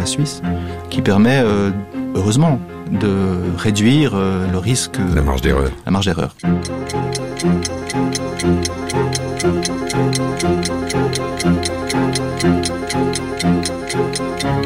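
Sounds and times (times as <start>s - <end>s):
looping tonal musical backing: 0.0s - 14.6s
speech: 0.1s - 14.6s
clock ticking: 6.3s - 14.6s.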